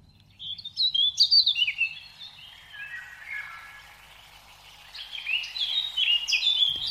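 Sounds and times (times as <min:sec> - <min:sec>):
songbird chirps and trills: 0:00.0 - 0:06.8.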